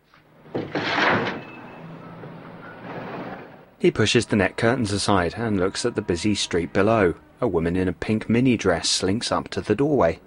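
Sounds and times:
window sliding open: 0:00.5 - 0:03.7
speech: 0:03.8 - 0:10.2.

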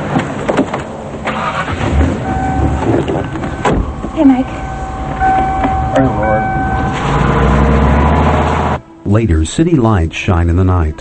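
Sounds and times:
car engine turning over and running rough: 0:00.0 - 0:08.8
speech: 0:04.2 - 0:04.7, 0:09.1 - 0:10.9.

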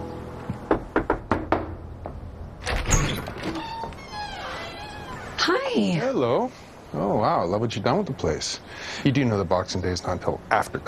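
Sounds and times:
firm knocks on a front door: 0:00.7 - 0:02.2
rattling clatter of a door being opened: 0:02.6 - 0:05.6
speech: 0:05.8 - 0:10.8.

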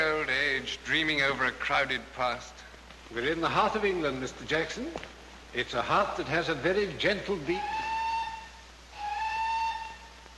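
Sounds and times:
low rumble of a special train arriving in England: 0:00.0 - 0:10.3
speech: 0:00.6 - 0:07.8
special train whistle sounding a steady multi-toned blast: 0:07.5 - 0:10.3.

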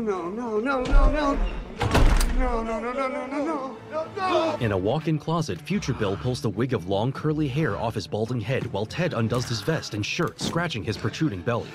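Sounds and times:
speech: 0:00.0 - 0:11.7
front door shutting with a solid thunk: 0:00.8 - 0:02.8
front door lock being turned with quick clicks: 0:01.8 - 0:02.6.

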